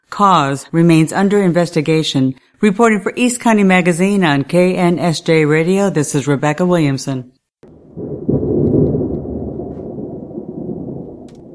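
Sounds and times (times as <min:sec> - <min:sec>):
speech: 0:00.2 - 0:07.4
thunder rumbling during a thunderstorm in San Diego County: 0:07.6 - 0:11.5.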